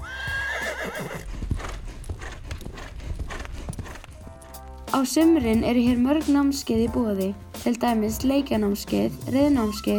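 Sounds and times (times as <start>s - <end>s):
horse whinnying with a high wavering neigh: 0.0s - 1.3s
horse hooves clip-clopping: 0.0s - 6.8s
speech: 4.9s - 9.9s.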